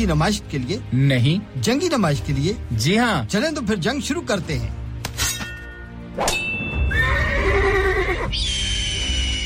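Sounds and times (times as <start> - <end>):
speech: 0.0 - 4.8
sharp metallic clang: 5.0 - 6.8
horse whinnying at a museum's horse display: 6.8 - 9.3.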